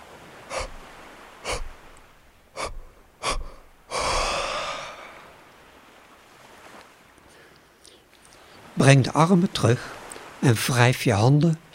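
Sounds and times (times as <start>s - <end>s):
yawn with deep inhale: 0.5s - 1.9s, 2.6s - 5.3s
speech: 8.8s - 11.7s.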